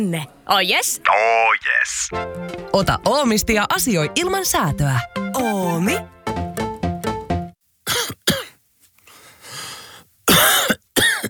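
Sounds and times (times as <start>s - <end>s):
speech: 0.0s - 6.2s
person coughing harshly: 7.9s - 8.6s, 10.3s - 11.2s.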